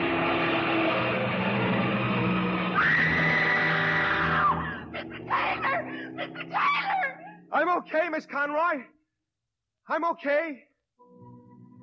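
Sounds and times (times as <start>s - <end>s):
truck engine roaring: 0.0s - 6.5s
woman screaming: 2.8s - 7.5s
speech: 7.8s - 9.0s, 9.9s - 11.3s.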